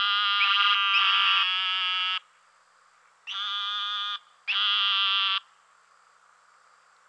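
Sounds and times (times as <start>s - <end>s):
Eastern narrowmouth toad making buzzing bleats: 0.0s - 2.2s, 3.3s - 5.5s.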